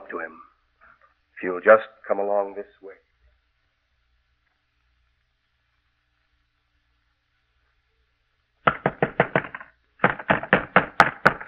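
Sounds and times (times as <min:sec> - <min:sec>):
speech: 0:00.1 - 0:00.5, 0:01.4 - 0:03.0
heavy fists pounding on a wooden door: 0:08.7 - 0:11.4.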